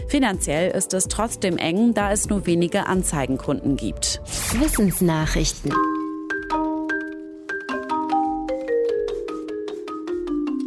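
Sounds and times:
speech: 0.1 - 5.9
music composed and played by a robot: 3.3 - 10.6.

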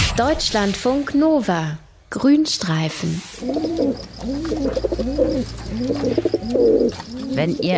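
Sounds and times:
speech: 0.1 - 7.7
feral city pigeons cooing in a city: 3.3 - 7.7.

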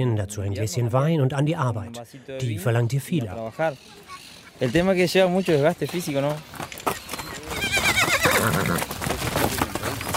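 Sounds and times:
speech: 0.0 - 7.0, 8.4 - 8.9
horse hooves clip-clopping in red earth dust: 3.0 - 10.1
horse whinnying with a wavering neigh: 7.3 - 9.0.

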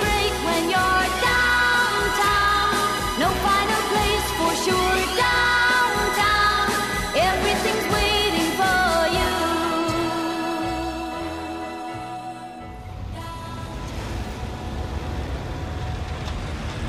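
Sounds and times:
song: 0.0 - 15.2
dense city street traffic of cars, buses and trucks: 12.8 - 16.8.

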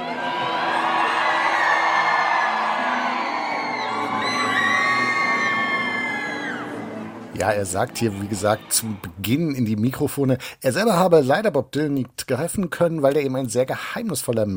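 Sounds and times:
large crowd of fans screaming and shrieking at a red carpet: 0.0 - 9.2
speech: 7.4 - 14.5.

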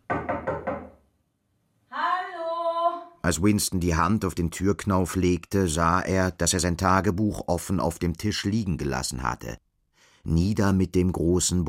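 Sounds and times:
knocking on a wooden apartment door: 0.0 - 1.0
speech: 3.2 - 11.6.

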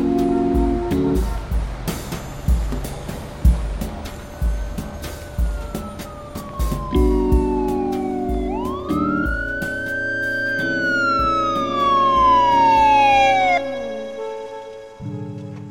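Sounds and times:
police siren wailing: 0.0 - 1.8, 4.4 - 14.8
low rumble of a vehicle engine: 0.0 - 13.6.

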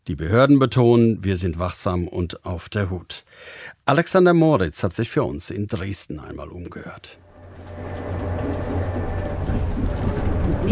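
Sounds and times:
speech: 0.1 - 8.2
tram in motion in Leipzig at rush hour: 7.2 - 10.6.

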